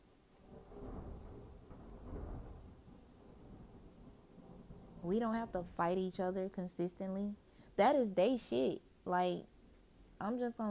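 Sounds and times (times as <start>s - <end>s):
faint hiss of rain: 0.0s - 10.6s
deep rolling thunder rumbling: 0.3s - 6.5s
speech: 5.0s - 9.5s, 10.2s - 10.6s.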